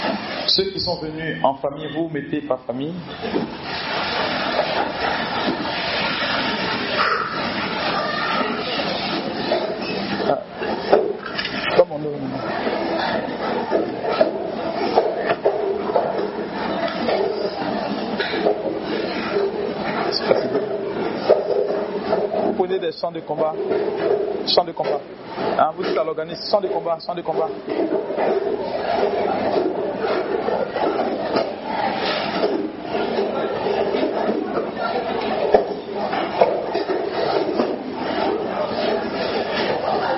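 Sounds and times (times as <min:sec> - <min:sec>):
speech: 0:00.5 - 0:03.9, 0:22.9 - 0:29.7
many chairs dragged across a floor at a prayer gathering: 0:03.0 - 0:22.7, 0:23.5 - 0:40.1.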